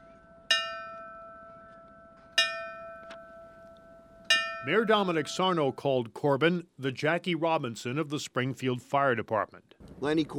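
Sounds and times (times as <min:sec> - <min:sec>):
ceremonial bell tolling at a monument: 0:00.0 - 0:05.9
speech: 0:04.6 - 0:10.3.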